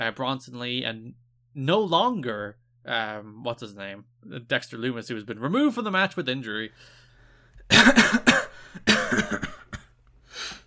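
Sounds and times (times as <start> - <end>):
speech: 0.0 - 7.0, 8.8 - 9.5
man coughing harsh chesty coughs: 7.7 - 10.0.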